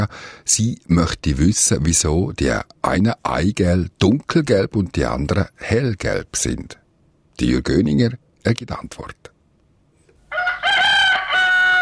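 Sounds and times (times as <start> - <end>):
speech: 0.0 - 6.8, 7.4 - 9.3
rooster crowing: 10.3 - 11.7.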